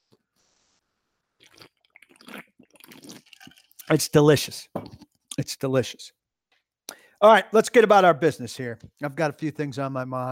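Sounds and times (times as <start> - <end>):
airy slurp sipping a drink from a cup: 1.4 - 4.0
wet gulping and mouth sounds: 1.4 - 4.0, 4.8 - 5.2
speech: 3.9 - 4.8, 5.4 - 6.2, 7.2 - 10.3.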